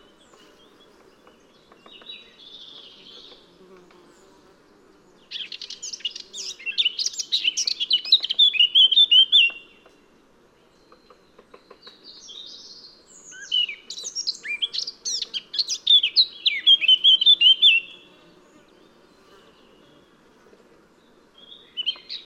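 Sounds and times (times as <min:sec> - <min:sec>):
Eurasian blackcap Sylvia atricapilla singing a scratchy warble: 0:05.3 - 0:09.6, 0:11.8 - 0:18.0.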